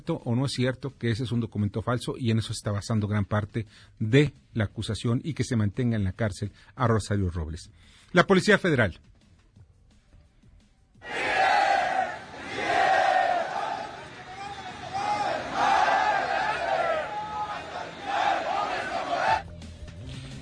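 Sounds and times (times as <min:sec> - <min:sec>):
speech: 0:00.0 - 0:09.1
large crowd of protesters shouting and chanting near airport: 0:11.0 - 0:19.4.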